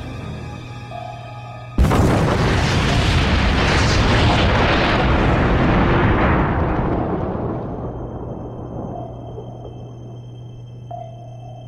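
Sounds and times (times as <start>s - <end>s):
underwater explosion of a fired torpedo striking its target: 1.8s - 10.4s.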